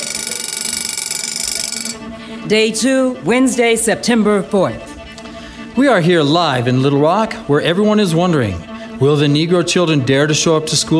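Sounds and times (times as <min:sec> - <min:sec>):
alarm clock ringing: 0:00.0 - 0:02.1
speech: 0:02.5 - 0:04.9, 0:05.8 - 0:10.9.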